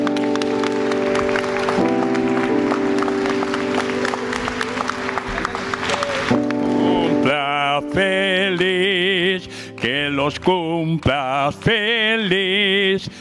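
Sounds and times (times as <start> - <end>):
crowd applauding: 0.0 - 12.5
sustained keyboard chords: 0.0 - 13.2
speech: 9.4 - 13.2.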